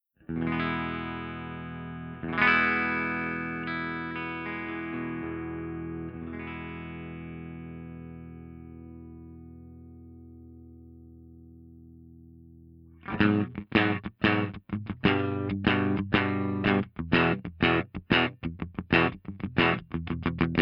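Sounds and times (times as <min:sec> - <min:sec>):
Fender Twin guitar amplifier: 0:00.2 - 0:20.6.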